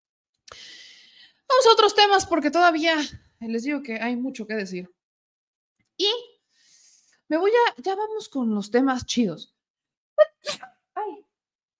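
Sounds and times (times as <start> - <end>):
speech: 1.5 - 5.0, 6.0 - 6.3, 7.3 - 9.5
person with seasonal allergies sneezing: 10.3 - 10.7.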